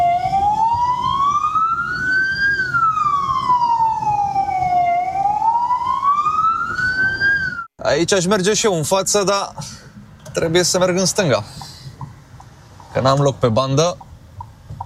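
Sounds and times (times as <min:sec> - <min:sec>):
ambulance or police siren wailing: 0:00.0 - 0:07.7
low rumble of traffic and engines at a busy intersection: 0:00.0 - 0:14.8
speech: 0:08.0 - 0:09.8, 0:10.4 - 0:11.6, 0:13.0 - 0:14.0.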